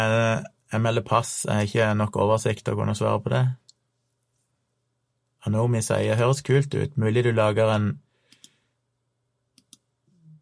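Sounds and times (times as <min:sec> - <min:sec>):
speech: 0:00.0 - 0:03.6, 0:05.4 - 0:08.0
faint steady hum: 0:00.0 - 0:10.4
computer mouse clicks: 0:08.3 - 0:08.6, 0:09.5 - 0:09.9.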